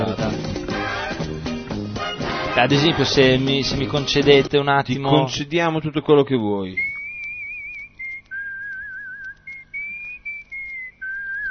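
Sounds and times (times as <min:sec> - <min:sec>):
faint vinyl record noise: 0:00.0 - 0:11.4
speech: 0:02.6 - 0:06.9
person whistling a film-score melody from the 1960s-70s on a vinyl record: 0:06.8 - 0:11.4.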